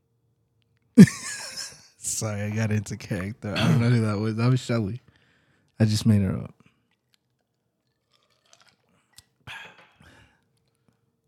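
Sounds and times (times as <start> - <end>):
laughter: 1.0 - 4.3
speech: 2.2 - 5.1, 5.8 - 6.6
person gulping down water: 6.7 - 11.2.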